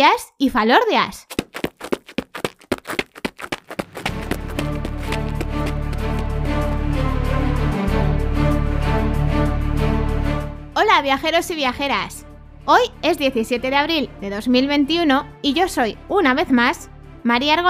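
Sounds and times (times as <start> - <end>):
speech: 0.0 - 1.4, 10.8 - 17.6
footfalls of someone running away: 1.3 - 7.0
sustained full-bodied music passage: 3.9 - 10.6.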